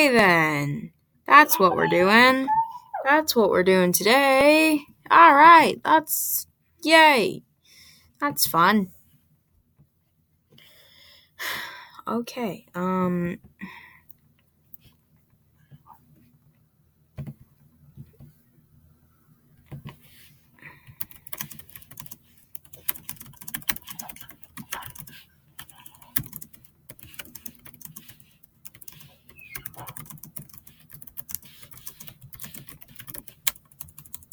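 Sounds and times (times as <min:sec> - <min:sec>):
speech: 0:00.0 - 0:07.5, 0:08.2 - 0:09.0, 0:11.4 - 0:13.8
typing on a computer keyboard: 0:21.0 - 0:34.3.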